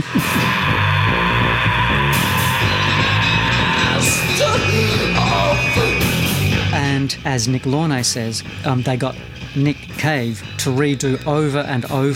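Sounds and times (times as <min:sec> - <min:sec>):
harsh screamed vocals: 0:00.0 - 0:06.3
punk rock band with distorted sound: 0:00.0 - 0:12.0
speech: 0:07.2 - 0:12.1.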